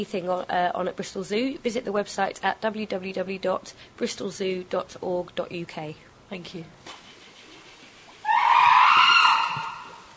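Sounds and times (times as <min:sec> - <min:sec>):
speech: 0:00.0 - 0:07.0
South American fur seal bleating call: 0:08.2 - 0:10.1.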